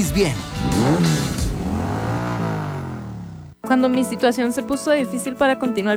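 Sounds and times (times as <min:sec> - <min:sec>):
speech: 0:00.0 - 0:01.1, 0:03.7 - 0:05.9
motorcycle engine revving: 0:00.0 - 0:03.6.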